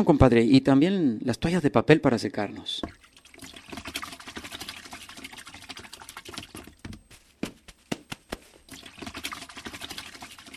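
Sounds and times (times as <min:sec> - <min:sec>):
speech: 0:00.0 - 0:03.0
water pouring into a tank: 0:02.6 - 0:07.1, 0:08.6 - 0:10.5
water splashing: 0:02.8 - 0:10.5
sharp knocks: 0:06.8 - 0:08.5.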